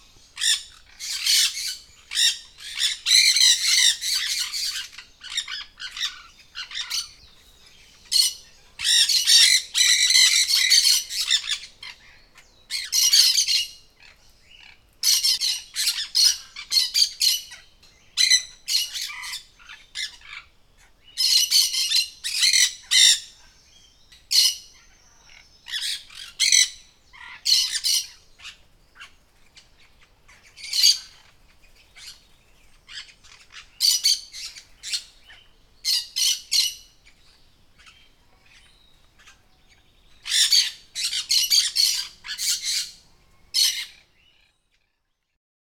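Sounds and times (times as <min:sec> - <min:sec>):
birds in a jungle: 0:00.0 - 0:45.4.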